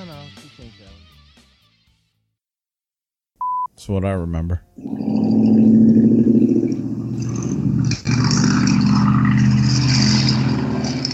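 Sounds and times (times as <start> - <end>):
speech: 3.8 - 6.1
lifted mud truck engine roaring past outside in Florida: 4.8 - 11.1.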